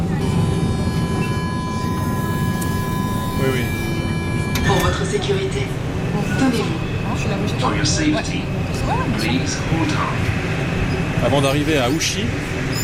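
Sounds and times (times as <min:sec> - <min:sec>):
low rumble inside a moving metro car: 0:00.0 - 0:12.8
high metro electric motor whine: 0:00.2 - 0:04.9
speech: 0:05.1 - 0:10.5, 0:11.2 - 0:12.7.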